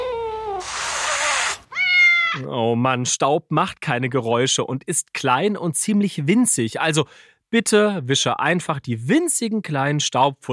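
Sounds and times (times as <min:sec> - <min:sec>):
neighbour's cat meowing: 0:00.0 - 0:02.4
harsh breathy hiss-like noise: 0:00.6 - 0:01.6
speech: 0:02.3 - 0:10.5.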